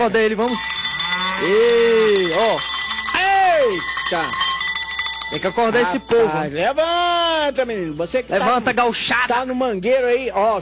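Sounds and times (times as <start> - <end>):
speech: 0.0 - 4.5, 5.3 - 10.6
bell ringing at a cattle pen: 0.0 - 6.8.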